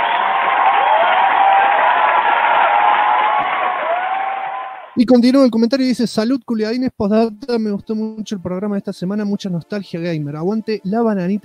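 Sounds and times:
applause sound effect of crowd clapping and cheering: 0:00.0 - 0:05.0
speech: 0:05.0 - 0:11.4.

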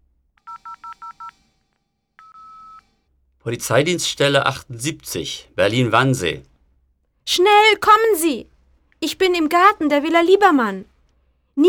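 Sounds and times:
mobile phone keypad beeps dialing the police: 0:00.4 - 0:01.4, 0:02.2 - 0:02.8
speech: 0:03.4 - 0:06.5, 0:07.3 - 0:10.9.

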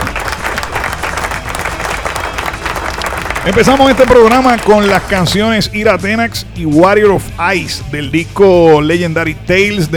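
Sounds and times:
crowd applause: 0:00.0 - 0:05.3
speech: 0:03.4 - 0:09.9.

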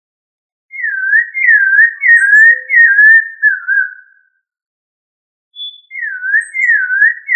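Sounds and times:
thrush whistling: 0:00.7 - 0:04.1, 0:05.6 - 0:07.3.

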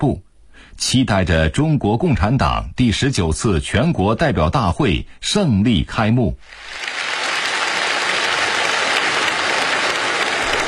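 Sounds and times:
speech: 0:00.0 - 0:07.0
villagers applauding in a village Communist Party branch meeting room: 0:06.5 - 0:10.6.

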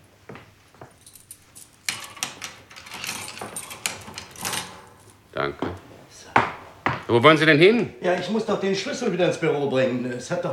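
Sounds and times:
metal grille gate being closed: 0:01.6 - 0:05.3
speech: 0:07.1 - 0:10.5.

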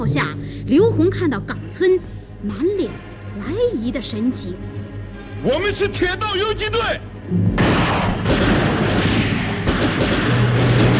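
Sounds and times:
speech: 0:00.0 - 0:04.8, 0:05.4 - 0:08.5
light machine gun fire in a radio drama battle scene: 0:07.6 - 0:10.9.

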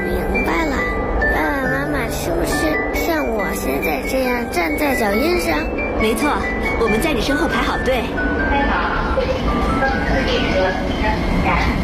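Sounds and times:
subway train arriving at a platform: 0:00.0 - 0:11.8
speech: 0:04.4 - 0:11.8.

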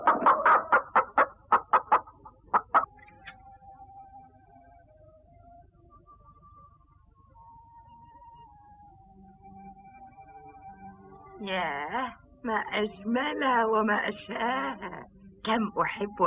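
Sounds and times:
hen clucking: 0:00.0 - 0:03.1
speech: 0:12.8 - 0:16.2.

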